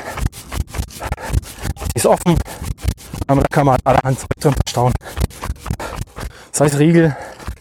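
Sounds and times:
zipper on a trouser pocket being pulled: 0:00.0 - 0:06.4, 0:07.3 - 0:07.5
speech: 0:02.0 - 0:02.7, 0:03.3 - 0:05.2, 0:06.6 - 0:07.2.

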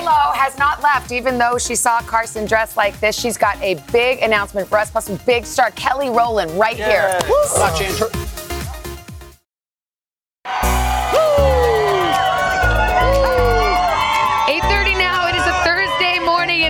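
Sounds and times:
speech: 0:00.1 - 0:08.2
studio audience cheering and whooping: 0:06.8 - 0:08.1, 0:10.5 - 0:16.6
laughter: 0:06.8 - 0:08.2.

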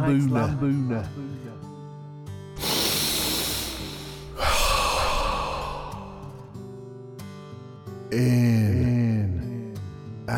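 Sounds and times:
speech: 0:00.0 - 0:01.3, 0:08.1 - 0:08.9
deep breathing in and out during a guided breathing exercise: 0:02.6 - 0:06.7.

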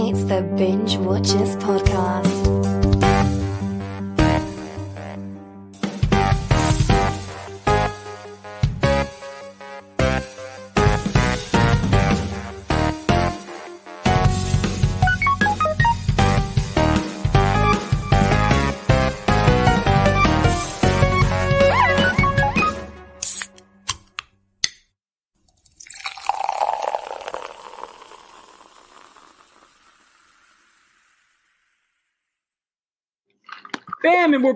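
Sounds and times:
speech: 0:00.1 - 0:02.8
upbeat instrumental podcast intro theme tune: 0:01.3 - 0:24.0
drink being poured into a cup: 0:25.6 - 0:31.4.

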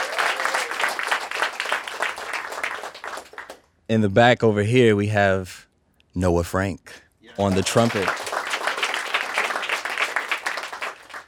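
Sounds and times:
faint audience cheering at a live concert: 0:00.0 - 0:01.3, 0:07.2 - 0:10.9
audience applauding at a live concert: 0:00.0 - 0:03.6, 0:07.3 - 0:11.2
speech: 0:03.9 - 0:08.2.

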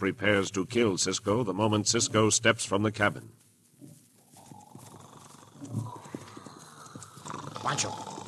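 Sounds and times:
speech: 0:00.0 - 0:03.5, 0:07.7 - 0:08.1
horse hooves clopping: 0:01.7 - 0:08.2.

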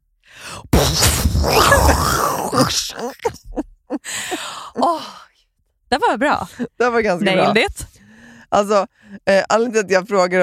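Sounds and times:
person vocally imitating an explosion: 0:00.5 - 0:03.3
laughter: 0:01.5 - 0:04.0
speech: 0:02.5 - 0:03.4, 0:05.9 - 0:07.9, 0:08.5 - 0:10.4.

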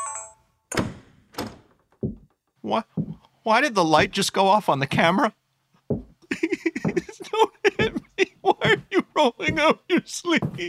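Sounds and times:
door thudding shut: 0:00.7 - 0:02.3
solid clunk of the door lock: 0:00.7 - 0:02.6
speech: 0:02.7 - 0:05.4, 0:09.2 - 0:10.6
laughter: 0:06.2 - 0:10.6.

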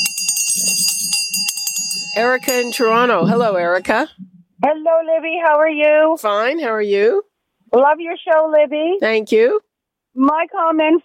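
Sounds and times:
small handbell ringing: 0:00.0 - 0:04.0
speech: 0:02.2 - 0:11.0.

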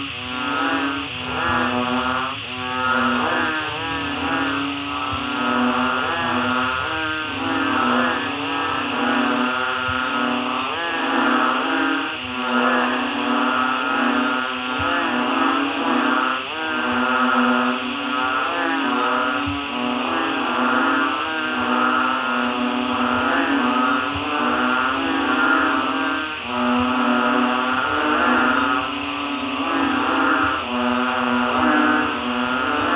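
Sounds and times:
frogs croaking in chorus in Thailand: 0:00.0 - 0:32.9.

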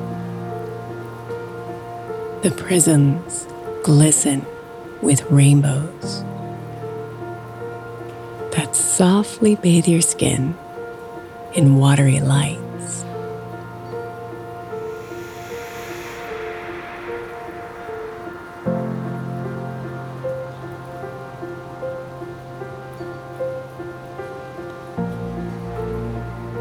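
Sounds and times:
soft sustained droning tones: 0:00.0 - 0:23.6
rain pouring: 0:00.0 - 0:26.6
speech: 0:02.4 - 0:06.3, 0:09.0 - 0:10.6, 0:11.6 - 0:12.6.

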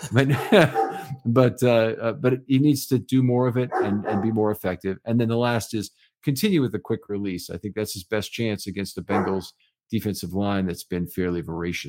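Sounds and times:
laughter: 0:00.0 - 0:01.5
speech: 0:00.0 - 0:11.8
dogs barking: 0:00.4 - 0:01.2, 0:03.7 - 0:04.4, 0:09.1 - 0:09.4.

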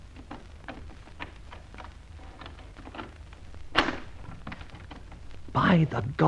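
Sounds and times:
rustling: 0:00.0 - 0:05.6
door opened with a sharp knock-like clunk: 0:03.8 - 0:05.2
speech: 0:05.6 - 0:06.2.

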